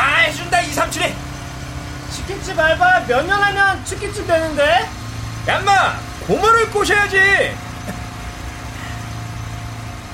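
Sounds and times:
motorcycle engine running: 0.0 - 10.1
speech: 2.5 - 8.0.

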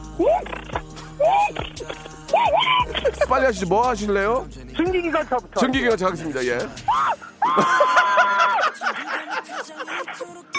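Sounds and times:
voice imitating an impact wrench tightening tire nuts: 0.0 - 3.4
laughter: 2.3 - 3.7, 6.9 - 10.5
speech: 3.3 - 8.1.

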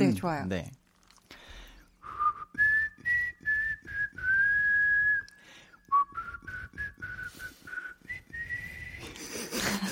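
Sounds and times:
speech: 0.1 - 0.8
breath noise between whistled notes: 1.1 - 2.5, 5.3 - 9.5
person whistling a pop song melody: 2.0 - 9.1.

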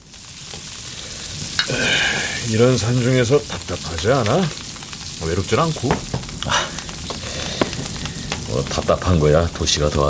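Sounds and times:
meat sizzling and crackling as it grills over a fire in the mountains: 0.0 - 10.0
speech: 2.5 - 4.6, 5.2 - 6.8, 8.5 - 10.0
sharp pop: 5.8 - 8.5.

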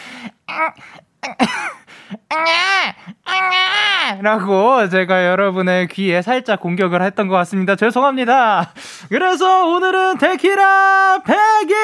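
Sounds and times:
person imitating a newborn baby's cry: 0.5 - 4.3
speech: 0.6 - 11.8.

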